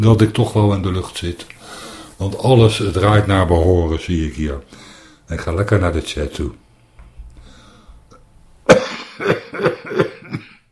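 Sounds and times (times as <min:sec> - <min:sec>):
speech: 0:00.0 - 0:06.6, 0:08.7 - 0:10.4
person coughing while smoking: 0:08.7 - 0:10.7.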